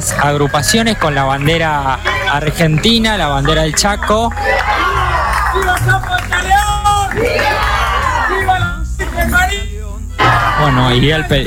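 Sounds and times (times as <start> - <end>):
speech: 0.0 - 6.3, 10.6 - 11.4
raised voices calling out: 0.0 - 11.4
crowd cheering and shouting outdoors: 3.4 - 9.4, 10.2 - 11.2.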